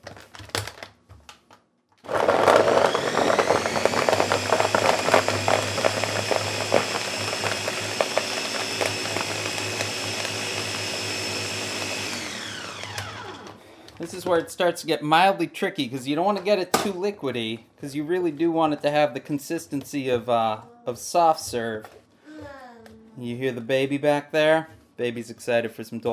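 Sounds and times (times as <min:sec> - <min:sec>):
blender blending frozen pineapple: 0:02.0 - 0:14.2
speech: 0:14.3 - 0:22.6, 0:23.2 - 0:26.1.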